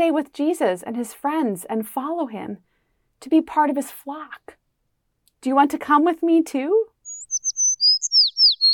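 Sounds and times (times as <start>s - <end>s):
speech: 0.0s - 4.6s, 5.4s - 6.9s
small bird tweeting with high thin chirps and short whistles: 7.0s - 8.7s.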